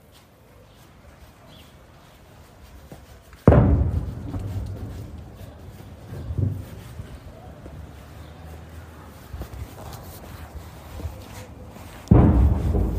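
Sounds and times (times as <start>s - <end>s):
faint urban noise: 0.0s - 12.9s
heavy artillery booms from guns in Kherson southern Ukraine: 3.5s - 5.3s, 12.1s - 12.9s.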